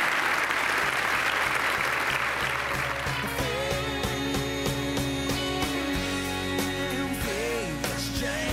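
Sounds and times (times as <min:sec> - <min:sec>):
audience applause: 0:00.0 - 0:03.4
musical theme: 0:02.2 - 0:08.5.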